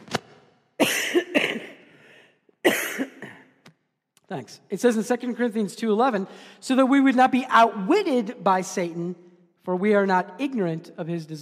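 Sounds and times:
harsh hacking coughing: 0.8 - 2.0, 2.6 - 3.6
speech: 4.3 - 11.4.

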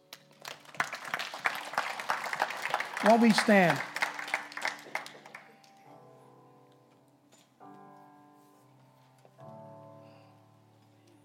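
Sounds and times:
audience applauding: 0.0 - 5.8
speech: 3.0 - 3.9.

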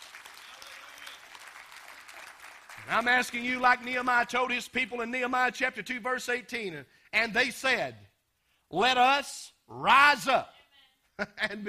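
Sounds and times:
audience clapping hands in praise: 0.0 - 4.1
speech: 2.9 - 8.0, 8.7 - 10.6, 11.2 - 11.6.

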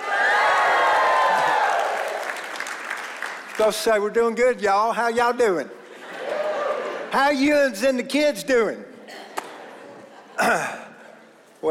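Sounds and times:
crowd giving a rebel yell, whooping and hollering: 0.0 - 2.6, 6.0 - 7.1
people clapping: 0.0 - 4.0
speech: 3.6 - 5.8, 7.1 - 8.9
laughter: 5.8 - 7.2, 9.0 - 10.9.

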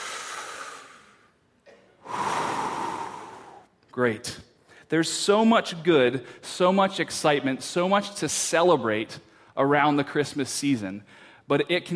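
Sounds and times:
group of people taking a deep breath together: 0.0 - 1.4, 2.0 - 3.7, 11.1 - 11.5
speech: 4.0 - 11.9.

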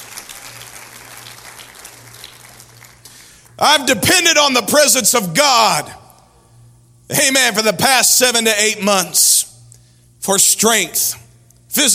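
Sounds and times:
congregation clapping hands: 0.0 - 3.6
speech: 3.6 - 6.0, 7.1 - 9.5, 10.2 - 11.9.

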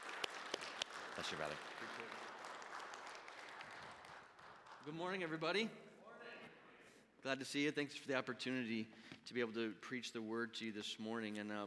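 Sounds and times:
congregation applauding: 0.0 - 5.2
speech: 1.2 - 2.4, 4.8 - 5.9, 7.2 - 11.6.

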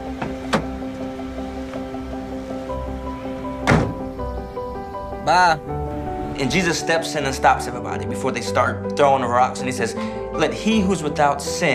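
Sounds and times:
door opening with dull thunks: 0.1 - 1.9, 2.8 - 6.4
speech: 5.3 - 5.8, 6.4 - 11.7.

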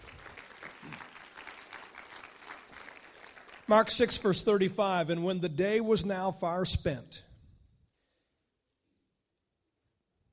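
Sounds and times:
audience clapping: 0.0 - 5.0
speech: 3.7 - 7.3.

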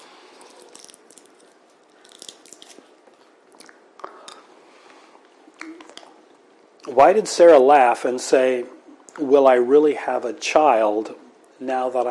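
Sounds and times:
cough drop wrapper crinkling: 0.4 - 2.9
wet mouth clicks from a cough drop: 5.6 - 6.2
speech: 6.9 - 12.0.

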